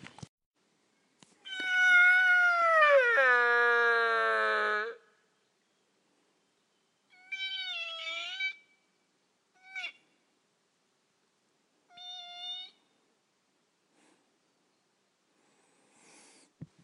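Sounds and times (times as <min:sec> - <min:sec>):
hunter imitating sika deer stag roar in the hills: 0:01.5 - 0:05.1, 0:07.1 - 0:08.7, 0:09.5 - 0:10.1.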